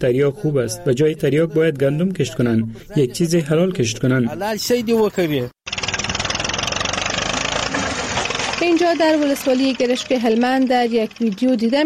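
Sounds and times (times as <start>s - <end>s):
speech: 0.0s - 5.6s, 8.8s - 11.8s
tractor engine chugging: 5.6s - 11.8s.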